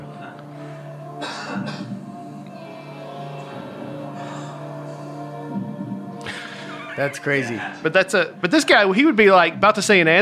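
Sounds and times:
steady humming room tone: 0.0 - 9.3
audience member coughing in a crowd: 1.2 - 1.9
speech: 7.0 - 10.2.

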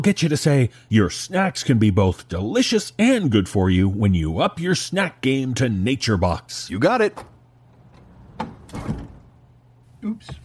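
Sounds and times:
speech: 0.0 - 7.3, 10.0 - 10.4
recording booth door shutting with a sharp knock: 7.1 - 9.3.

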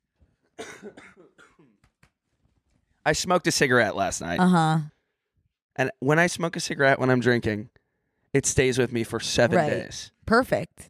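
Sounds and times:
person coughing in a harsh fit: 0.6 - 1.8
speech: 0.8 - 1.1, 3.1 - 5.0, 5.8 - 10.8.

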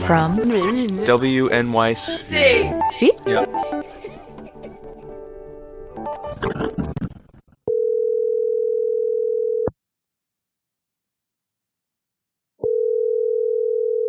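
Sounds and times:
speech: 0.1 - 3.8
laughter: 2.0 - 5.3
telephone ringback tone, a steady electronic purr: 7.7 - 9.7, 12.6 - 14.0.

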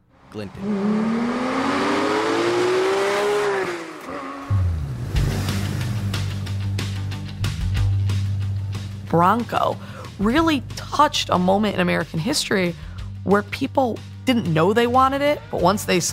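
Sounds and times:
car engine revving sound effect: 0.0 - 9.4
speech: 0.3 - 1.6, 9.1 - 16.1.

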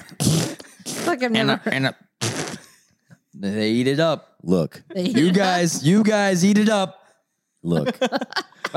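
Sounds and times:
wet raspy mouth fart noises blown by a person: 0.0 - 1.4, 2.2 - 2.8
speech: 1.1 - 2.1, 3.4 - 7.0, 7.6 - 8.7.

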